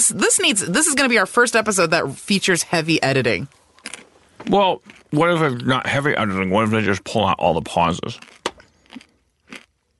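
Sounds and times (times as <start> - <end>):
speech: 0.1 - 3.6, 4.4 - 8.4
crunching on trail mix: 3.7 - 4.1, 4.8 - 5.2, 8.0 - 9.9.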